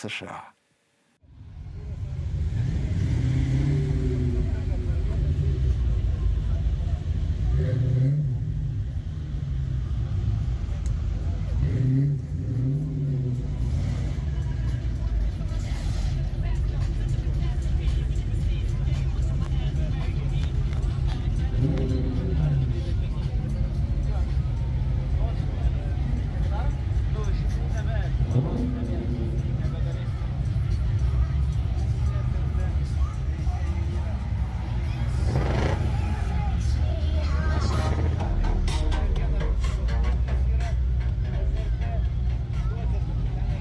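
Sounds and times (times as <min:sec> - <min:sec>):
speech: 0:00.0 - 0:00.6
big American car engines revving at a summer festival on an airfield: 0:01.3 - 0:43.5
faint crowd murmur: 0:01.3 - 0:43.5.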